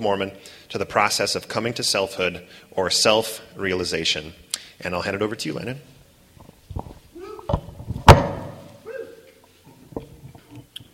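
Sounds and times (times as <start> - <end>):
speech: 0.0 - 6.0
door shutting thud during a presentation: 7.5 - 8.6.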